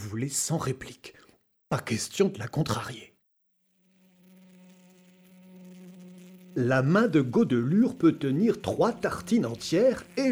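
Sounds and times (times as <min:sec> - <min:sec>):
speech: 0:00.1 - 0:03.1, 0:06.6 - 0:10.3
bee buzzing: 0:03.6 - 0:10.3.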